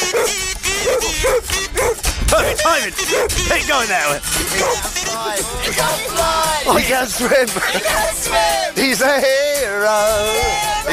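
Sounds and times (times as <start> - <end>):
dog barking in short high yaps: 0.0 - 3.4, 4.5 - 4.9
speech: 2.8 - 10.9
laughter: 4.2 - 10.9.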